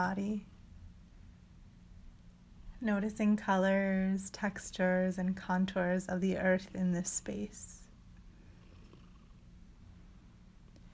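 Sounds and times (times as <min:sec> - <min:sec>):
speech: 0:00.0 - 0:00.6, 0:02.8 - 0:07.8
cat purring: 0:07.6 - 0:10.2.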